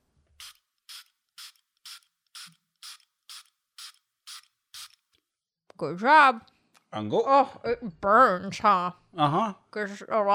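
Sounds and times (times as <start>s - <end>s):
small homeopathic spray pump being pressed: 0.4s - 5.1s
speech: 5.8s - 10.3s.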